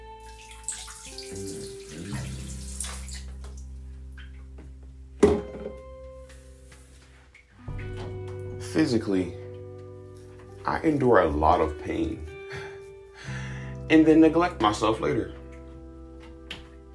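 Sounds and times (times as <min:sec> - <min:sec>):
bathtub filling with running water: 0:00.2 - 0:04.4
hollow thunk: 0:05.2 - 0:05.8
speech: 0:08.8 - 0:09.4, 0:10.7 - 0:12.3, 0:13.9 - 0:15.4.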